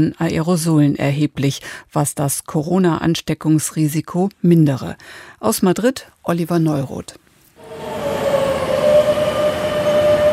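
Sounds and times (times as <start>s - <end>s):
speech: 0.0s - 7.9s
high metallic metro train wheel squeal: 7.6s - 10.3s
metro trains arriving at a busy station at rush hour: 7.6s - 10.3s.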